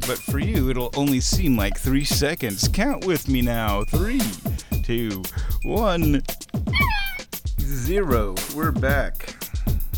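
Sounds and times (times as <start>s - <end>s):
speech: 0.1s - 6.9s, 7.7s - 9.4s
cat meowing inside a house: 6.7s - 7.3s.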